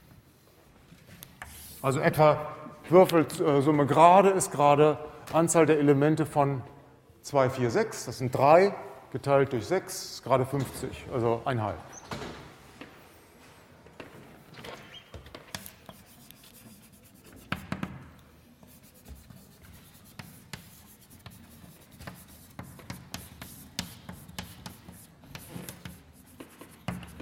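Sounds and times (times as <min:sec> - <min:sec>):
speech: 0:01.8 - 0:12.2
handwriting during a probability lesson: 0:15.5 - 0:18.0, 0:18.6 - 0:27.1.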